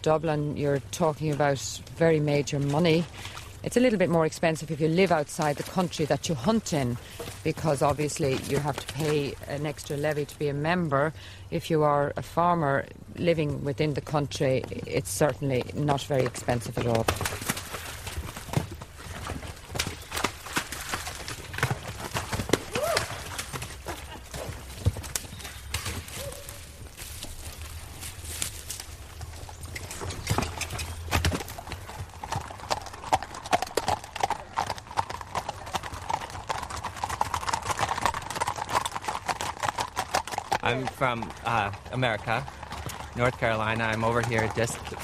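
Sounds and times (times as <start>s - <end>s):
speech: 0.0s - 17.5s, 41.1s - 42.6s, 43.2s - 45.0s
horse hooves clip-clopping: 0.0s - 45.0s.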